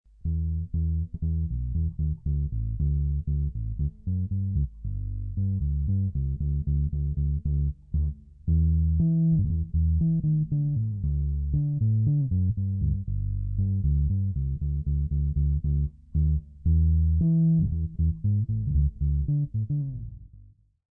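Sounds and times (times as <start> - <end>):
1972 Gibson EB4L electric bass guitar: 0.1 - 20.8.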